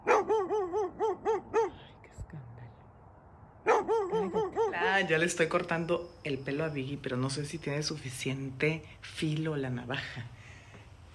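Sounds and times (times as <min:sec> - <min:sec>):
neighbor's dog barking: 0:00.0 - 0:01.8, 0:03.6 - 0:05.0
speech: 0:05.0 - 0:10.4.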